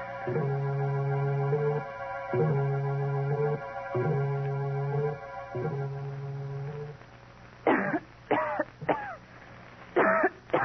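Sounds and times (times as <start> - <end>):
repeating low droning electronic tones: 0.0 - 7.1
woman coughing in harsh bursts: 7.7 - 9.2, 10.0 - 10.6.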